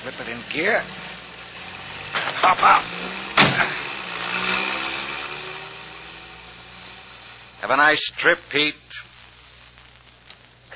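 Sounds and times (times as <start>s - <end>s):
speech: 0.0s - 1.0s, 2.4s - 3.8s, 7.6s - 8.8s
car engine starting: 0.0s - 7.6s.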